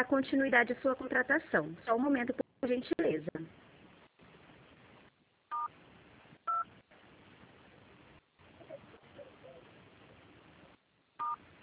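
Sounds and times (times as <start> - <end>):
speech: 0.0 - 3.6
faint hissy telephone line: 0.0 - 11.6
telephone dialing tones as a phone call is transferred: 6.5 - 6.7, 11.2 - 11.4.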